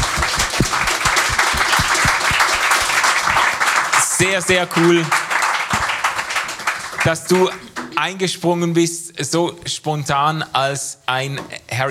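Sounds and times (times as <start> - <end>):
audience applause: 0.0 - 7.9
speech: 4.2 - 5.2, 7.0 - 11.8.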